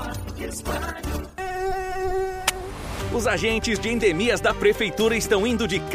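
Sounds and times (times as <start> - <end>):
speech: 0.1 - 1.4, 3.1 - 5.9
loud dengue mosquito whine: 1.4 - 2.7.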